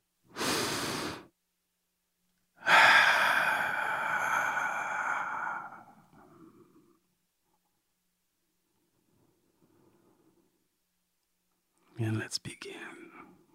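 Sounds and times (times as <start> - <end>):
person breathing in deeply: 0.4 - 1.3, 2.6 - 7.0
speech: 12.1 - 13.4.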